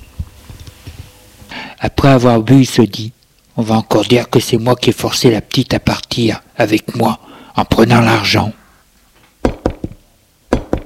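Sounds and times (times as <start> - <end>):
speech: 1.9 - 8.6
knocking on a door: 9.4 - 10.8.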